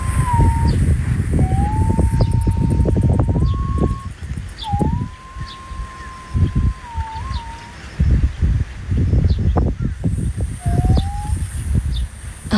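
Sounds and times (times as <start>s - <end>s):
green pigeon singing mellow whistled notes: 0.0s - 8.0s, 10.5s - 12.1s
strong gusting wind noise: 0.0s - 12.5s.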